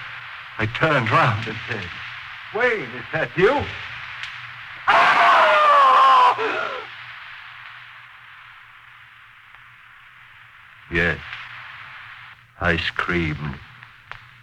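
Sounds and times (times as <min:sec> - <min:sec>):
steady hiss: 0:00.0 - 0:14.4
speech: 0:00.6 - 0:03.9, 0:12.6 - 0:13.7
man letting out a loud terrified scream: 0:04.9 - 0:06.9.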